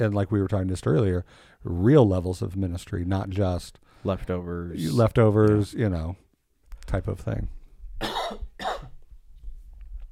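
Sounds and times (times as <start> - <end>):
speech: 0.0 - 6.2, 6.9 - 8.4
faint breathing: 1.2 - 1.6
person coughing: 8.0 - 9.0.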